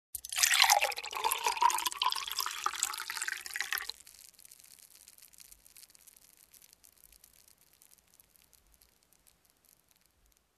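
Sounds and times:
soda pouring into a glass: 0.2s - 4.2s.

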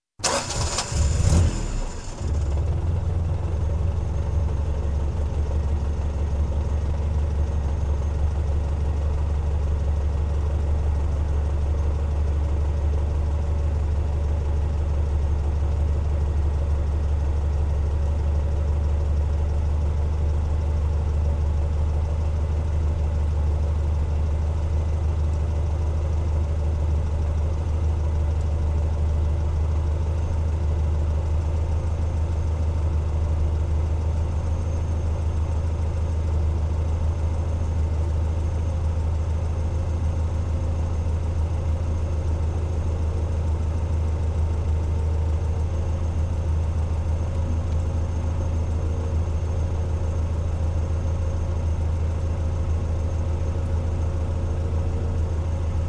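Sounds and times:
SUV engine ignition: 0.2s - 2.6s
SUV engine running idle: 0.2s - 55.8s.

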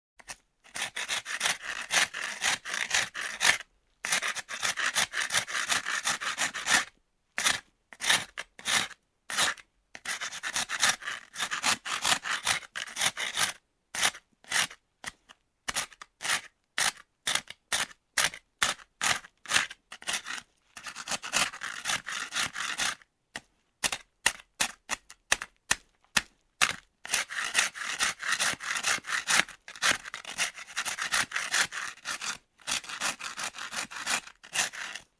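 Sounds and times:
sharpening wooden stick: 0.2s - 23.0s, 23.8s - 35.1s.

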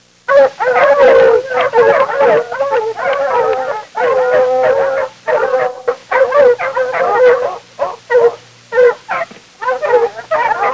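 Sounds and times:
foxes barking: 0.3s - 10.7s.

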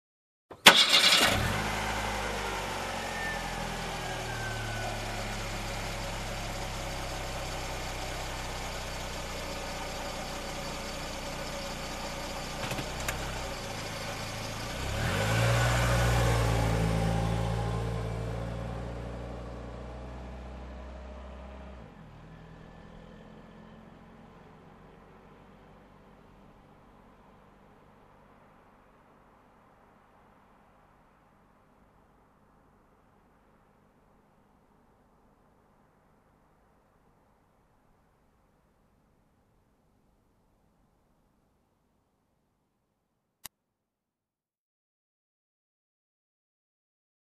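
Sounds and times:
car engine ignition: 0.5s - 25.2s
car driving away: 0.6s - 28.0s.

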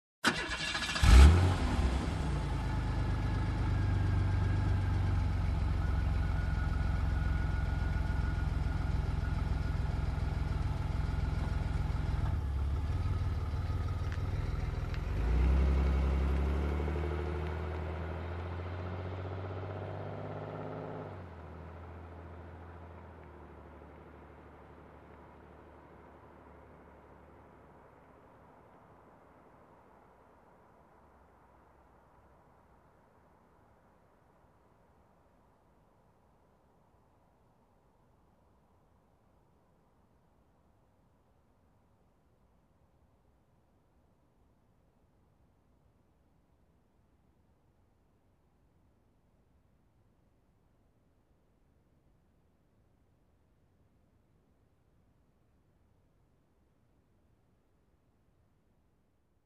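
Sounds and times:
SUV engine ignition: 0.2s - 26.0s.

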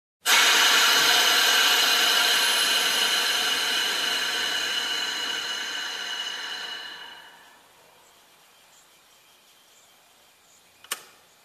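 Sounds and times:
electric cutter slowing down: 0.3s - 7.8s.

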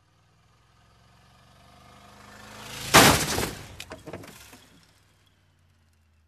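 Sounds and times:
motorcycle crash: 2.6s - 5.1s.

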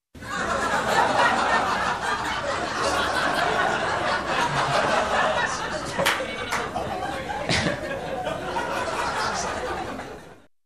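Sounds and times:
group of people laughing in a close room: 0.2s - 10.5s.

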